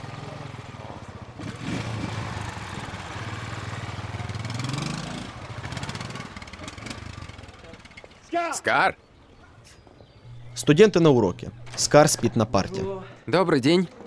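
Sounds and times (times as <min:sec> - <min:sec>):
motorcycle driving past: 0:00.0 - 0:08.3
speech: 0:08.4 - 0:09.0, 0:10.6 - 0:14.0.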